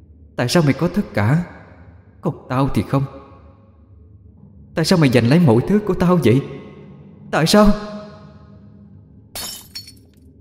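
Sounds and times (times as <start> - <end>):
faint low hum: 0.0 - 10.3
speech: 0.4 - 1.6, 2.2 - 3.2, 4.8 - 6.6, 7.3 - 8.0
falling mirror shards crashing: 9.4 - 10.1
mirror smashed and shattering on the floor: 9.4 - 10.2.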